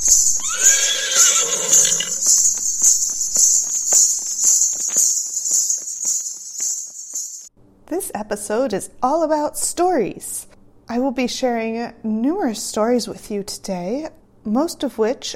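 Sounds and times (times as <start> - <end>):
shrill chorus of crickets: 0.0 - 7.5
horse whinnying: 0.3 - 2.3
speech: 8.3 - 15.3.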